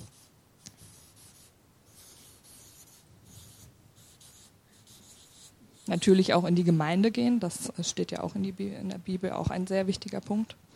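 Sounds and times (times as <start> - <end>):
pen scratching on a surface writing a word by hand: 0.0 - 6.2
speech: 5.9 - 10.7.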